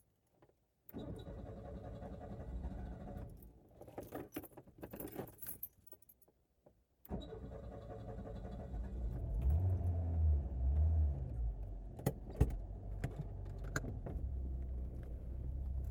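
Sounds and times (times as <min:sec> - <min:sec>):
keys jangling: 0:03.8 - 0:06.3
car engine rumbling: 0:08.5 - 0:15.9.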